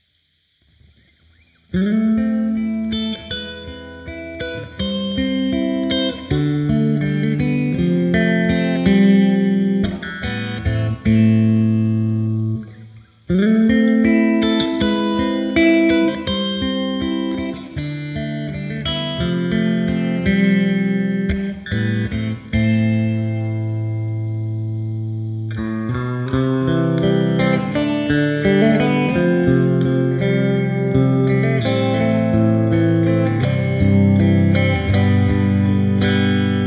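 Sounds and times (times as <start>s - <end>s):
humbucker electric guitar through a Fender Twin amplifier: 0.0s - 36.6s.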